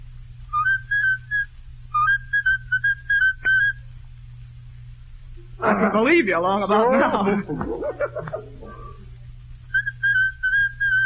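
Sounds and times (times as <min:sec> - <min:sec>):
steady low hum: 0:00.0 - 0:06.0, 0:06.6 - 0:11.0
man whistling a bright familiar popular tune: 0:00.5 - 0:03.8, 0:09.7 - 0:11.0
laughter: 0:05.6 - 0:09.0
speech: 0:05.6 - 0:09.0.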